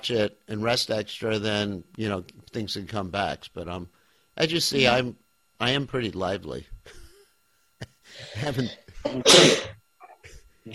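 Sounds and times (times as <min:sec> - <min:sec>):
speech: 0:00.0 - 0:07.0, 0:07.8 - 0:09.7
person sneezing: 0:09.0 - 0:09.8.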